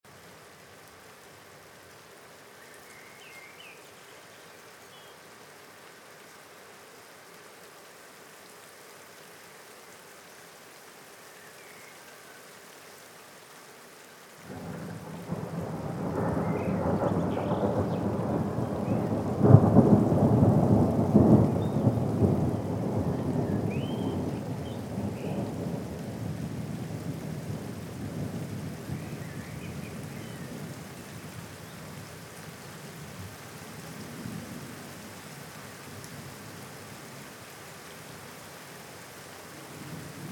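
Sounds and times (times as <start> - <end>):
rain: 0.0 - 40.3
storm: 14.5 - 29.6.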